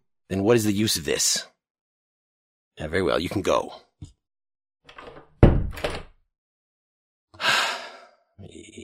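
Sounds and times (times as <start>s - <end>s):
speech: 0.3s - 1.5s, 2.8s - 4.1s
door shutting with heavy thud: 4.9s - 6.1s
long breathy sigh: 7.4s - 8.2s.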